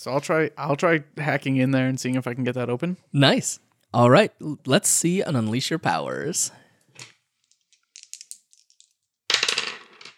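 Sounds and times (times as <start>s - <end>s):
speech: 0.0s - 7.1s
dice rolling on a table: 7.0s - 10.1s.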